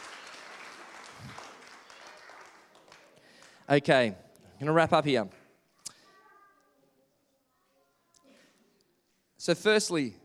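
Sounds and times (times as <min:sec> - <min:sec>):
audience applause: 0:00.0 - 0:03.8
speech: 0:03.7 - 0:05.4, 0:09.5 - 0:10.2.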